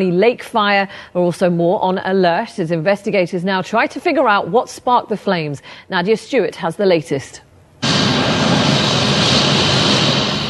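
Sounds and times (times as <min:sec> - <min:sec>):
speech: 0:00.0 - 0:07.5
firefighting aircraft flying over a wildfire in British Columbia: 0:07.8 - 0:10.4.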